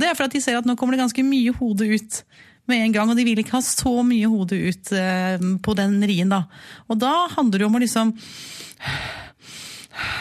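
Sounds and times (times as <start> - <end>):
speech: 0.0 - 10.1
quick shallow panting breaths used during childbirth: 8.2 - 10.1.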